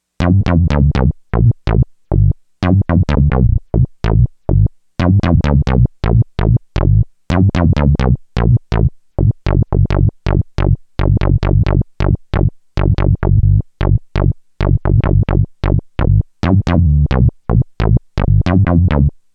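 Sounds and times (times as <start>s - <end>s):
descending sawtooth bass: 0.2s - 19.2s.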